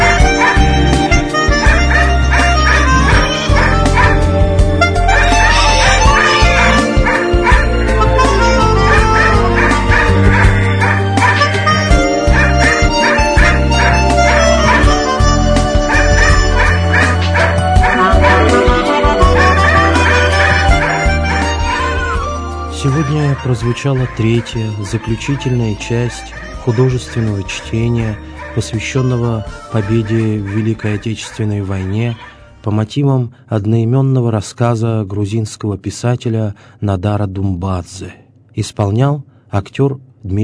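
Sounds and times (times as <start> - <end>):
dog whimpering: 0.2 - 4.4, 5.1 - 22.4
dog barking: 0.4 - 0.8, 1.5 - 4.3, 5.1 - 7.7, 8.9 - 15.2, 15.7 - 21.9
speech: 23.5 - 40.4.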